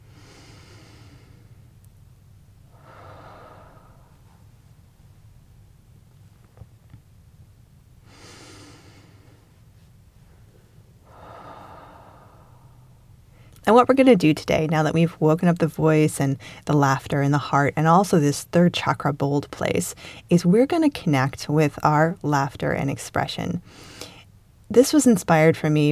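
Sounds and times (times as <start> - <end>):
slow deep breathing during a guided chakra exercise: 0.0 - 1.7, 2.7 - 4.6, 8.0 - 9.6, 10.3 - 13.6
steady low hiss: 0.0 - 25.9
speech: 13.7 - 24.1, 24.7 - 25.9.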